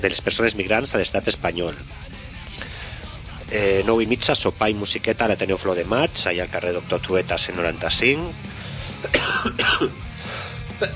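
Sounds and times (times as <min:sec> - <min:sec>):
speech: 0:00.0 - 0:02.2, 0:03.5 - 0:10.0
person coughing: 0:09.0 - 0:10.1, 0:10.7 - 0:10.9.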